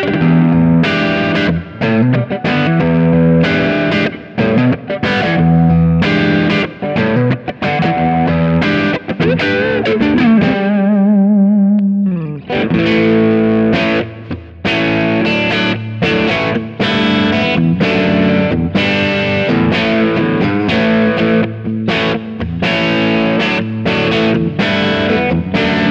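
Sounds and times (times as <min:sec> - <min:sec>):
Ibanez AZR420 electric guitar humbucker crunch, neck to bridge pickup: 0:00.0 - 0:25.8.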